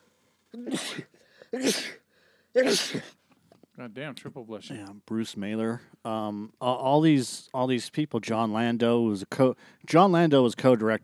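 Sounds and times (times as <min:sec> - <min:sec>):
breathy intake between sneezes: 0:00.0 - 0:02.7
person sneezing: 0:00.5 - 0:03.2
speech: 0:00.6 - 0:02.0, 0:02.6 - 0:03.2, 0:03.8 - 0:11.0.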